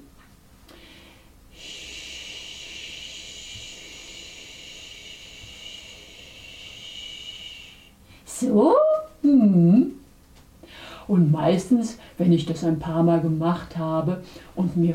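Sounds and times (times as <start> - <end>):
breath blown out through pursed lips imitating wind: 1.5 - 8.0
speech: 8.4 - 10.0, 11.1 - 14.9.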